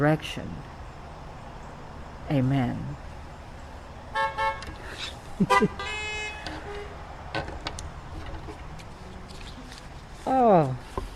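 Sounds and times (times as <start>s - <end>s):
speech: 0.0s - 0.8s, 2.3s - 3.1s, 5.0s - 6.0s, 10.3s - 10.9s
car horns honking outdoors: 4.1s - 7.1s.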